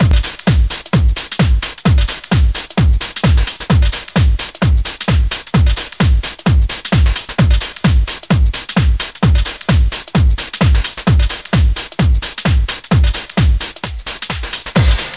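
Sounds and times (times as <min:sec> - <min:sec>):
music beats: 0:00.0 - 0:15.1.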